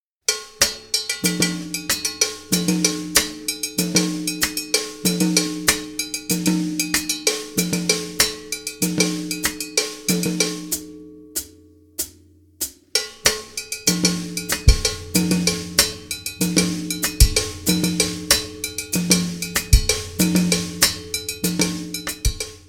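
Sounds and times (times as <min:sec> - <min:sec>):
Latin mambo bell groove: 0:00.3 - 0:11.5, 0:13.0 - 0:22.6.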